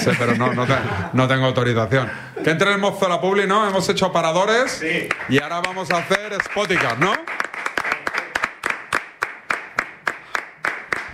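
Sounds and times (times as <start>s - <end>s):
laughter: 0.0s - 1.4s
speech: 0.0s - 7.4s
two newsroom interns clapping briskly: 5.0s - 11.1s.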